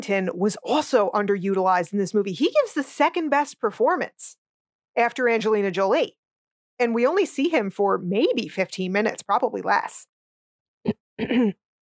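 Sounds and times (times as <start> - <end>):
speech: 0.0 - 4.4, 5.0 - 6.2, 6.8 - 10.1, 10.8 - 11.6
person clearing throat: 11.2 - 11.6.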